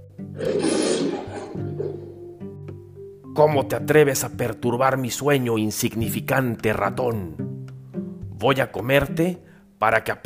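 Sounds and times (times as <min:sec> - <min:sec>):
speech: 0:00.4 - 0:00.8, 0:03.4 - 0:07.4, 0:08.4 - 0:10.2
angry lion roaring: 0:00.4 - 0:02.1.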